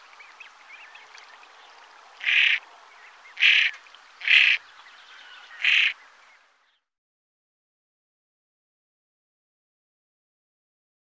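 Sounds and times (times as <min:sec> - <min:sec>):
common pochard giving harsh rasping calls: 0:02.2 - 0:02.6, 0:03.4 - 0:04.6, 0:05.6 - 0:06.0.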